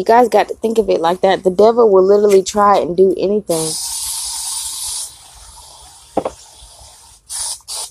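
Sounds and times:
speech: 0:00.0 - 0:04.0
aerosol can spraying: 0:03.5 - 0:07.8.

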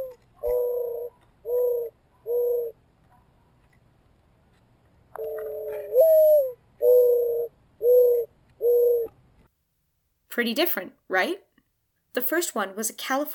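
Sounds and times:
mourning dove cooing: 0:00.0 - 0:02.8, 0:05.2 - 0:09.2
speech: 0:10.4 - 0:11.4, 0:12.2 - 0:13.3.

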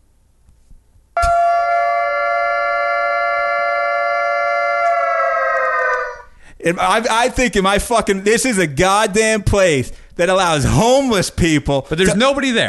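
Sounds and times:
air raid siren: 0:01.2 - 0:06.3
speech: 0:06.6 - 0:12.6.

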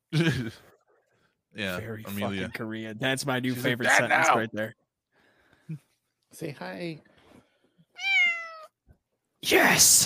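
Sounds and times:
speech: 0:00.1 - 0:00.7, 0:01.5 - 0:04.8, 0:05.7 - 0:07.1, 0:09.4 - 0:10.0
laughter: 0:00.1 - 0:00.8
cat meowing: 0:08.0 - 0:08.8.

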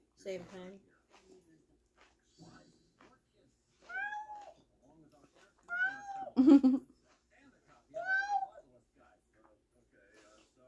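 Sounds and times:
speech: 0:00.2 - 0:00.9, 0:06.4 - 0:06.9
cat meowing at a closed door: 0:03.9 - 0:04.6, 0:05.7 - 0:06.4, 0:08.0 - 0:08.6
laughter: 0:06.4 - 0:06.8.

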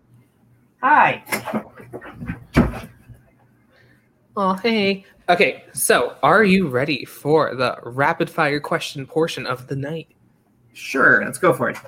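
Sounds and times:
speech: 0:00.8 - 0:02.9, 0:04.4 - 0:10.2, 0:10.8 - 0:11.8
dog scuffling while pushing a door open: 0:01.3 - 0:03.2
door thump as it swings open: 0:01.3 - 0:03.2.

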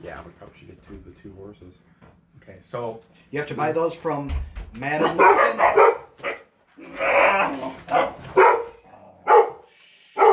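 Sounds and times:
speech: 0:00.0 - 0:06.3, 0:06.9 - 0:08.1
dog barking indoors at home: 0:05.0 - 0:06.5, 0:07.9 - 0:10.3.

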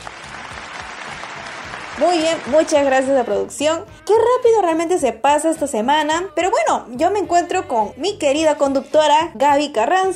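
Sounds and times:
crowd applauding: 0:00.0 - 0:03.1
speech: 0:02.0 - 0:10.1.

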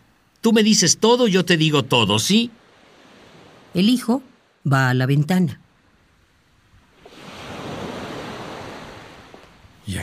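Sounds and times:
faint wind rumble: 0:00.0 - 0:10.0
steady sea breeze: 0:00.0 - 0:10.0
speech: 0:00.4 - 0:02.6, 0:03.7 - 0:05.6
ocean surf swelling and breaking: 0:01.4 - 0:04.6, 0:06.8 - 0:10.0.

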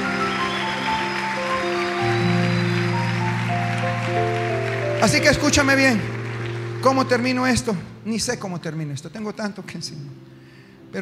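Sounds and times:
large crowd applause: 0:00.0 - 0:07.9
sustained keyboard chords: 0:00.0 - 0:10.9
speech: 0:05.0 - 0:06.2, 0:06.8 - 0:10.3.

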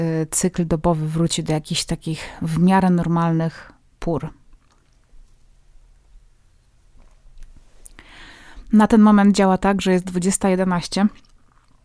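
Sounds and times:
speech: 0:00.0 - 0:04.4, 0:08.7 - 0:11.3
low hiss: 0:02.0 - 0:09.4
person sipping and swallowing espresso: 0:04.5 - 0:05.2, 0:11.1 - 0:11.8.

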